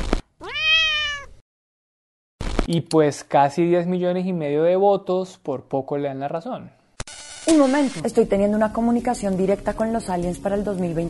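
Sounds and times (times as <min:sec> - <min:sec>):
female pet cat meowing loudly: 0:00.4 - 0:01.4
speech: 0:02.7 - 0:06.8, 0:07.4 - 0:11.0.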